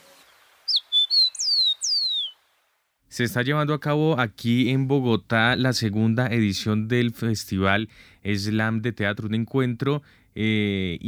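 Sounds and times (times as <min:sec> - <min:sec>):
rufous-collared sparrow singing: 0:00.7 - 0:02.4
speech: 0:03.2 - 0:11.0.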